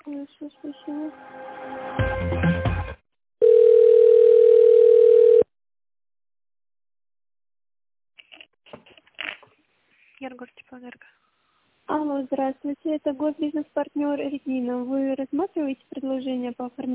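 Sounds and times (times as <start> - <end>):
speech: 0.2 - 2.6, 12.3 - 16.9
telephone ringback tone while a call is transferred: 3.4 - 5.5.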